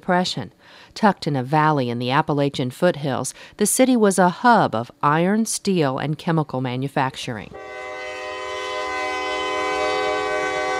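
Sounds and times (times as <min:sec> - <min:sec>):
speech: 0:00.0 - 0:07.9
freight train horn blaring in Anniston, Alabama: 0:07.5 - 0:10.7
rail cars rolling in Anniston, Alabama: 0:07.6 - 0:10.7.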